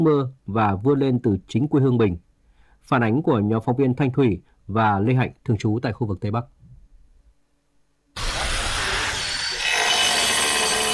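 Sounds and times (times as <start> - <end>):
speech: 0.0 - 2.2, 2.8 - 6.6
tile cutter or concrete drill grinding on a school building site: 8.2 - 10.9.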